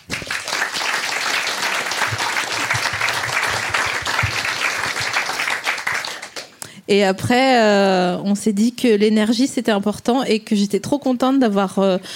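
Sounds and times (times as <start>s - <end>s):
dense fairly loud applause: 0.0s - 6.6s
speech: 6.9s - 12.1s.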